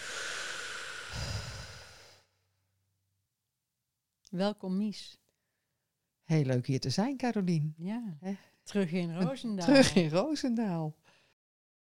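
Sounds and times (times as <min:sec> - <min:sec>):
slow audible breath in and out close to the microphone: 0:00.0 - 0:02.4
speech: 0:04.3 - 0:05.2, 0:06.3 - 0:11.1.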